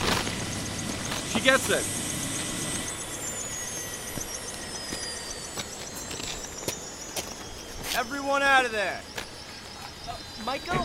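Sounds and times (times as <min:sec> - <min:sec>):
constant helicopter mechanical rumble: 0:00.0 - 0:10.8
helicopter engine turbine whine winding down at shutdown: 0:00.0 - 0:10.8
speech: 0:01.4 - 0:02.0, 0:08.0 - 0:09.2, 0:10.1 - 0:10.8.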